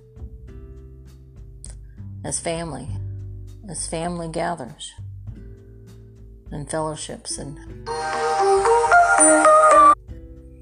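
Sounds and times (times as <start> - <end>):
speech: 2.2 - 3.0, 3.7 - 5.0, 6.5 - 9.5
phone melodic electronic ringtone: 7.9 - 10.0.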